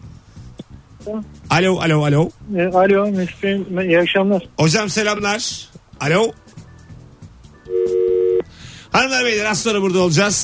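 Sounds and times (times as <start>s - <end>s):
speech: 1.0s - 6.4s, 8.9s - 10.4s
steady electronic telephone line tone of a faltering phone call: 7.7s - 8.4s.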